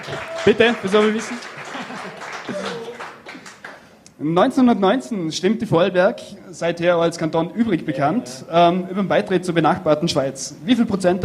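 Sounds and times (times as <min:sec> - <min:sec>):
speech: 0:00.0 - 0:01.6, 0:04.2 - 0:11.2
audience applause: 0:00.0 - 0:03.9
crowd laughter: 0:01.0 - 0:03.2.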